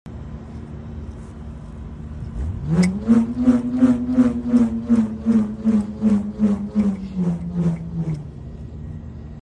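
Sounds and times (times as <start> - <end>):
bullroarer whirring: 2.2 - 8.7.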